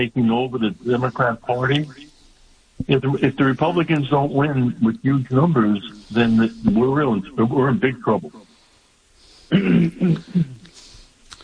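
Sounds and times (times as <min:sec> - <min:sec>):
speech: 0:00.0 - 0:02.1, 0:02.8 - 0:08.4, 0:09.5 - 0:10.6
faint scattered small noises: 0:00.0 - 0:11.4
man clearing throat: 0:09.5 - 0:10.8.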